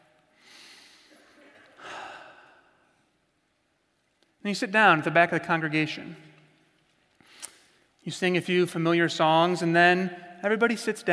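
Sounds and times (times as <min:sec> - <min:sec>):
person taking a deep breath during a guided meditation: 0:00.4 - 0:02.8
speech: 0:04.4 - 0:06.3, 0:08.0 - 0:11.1.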